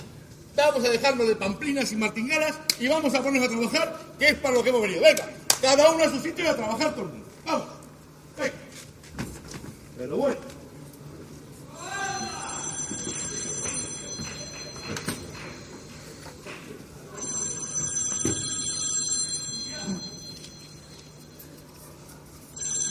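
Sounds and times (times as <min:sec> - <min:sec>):
low room noise: 0:00.0 - 0:22.8
speech: 0:00.6 - 0:07.7, 0:08.4 - 0:08.6, 0:10.0 - 0:10.5
telephone bell ringing: 0:12.4 - 0:15.8, 0:17.1 - 0:21.4, 0:22.5 - 0:22.8.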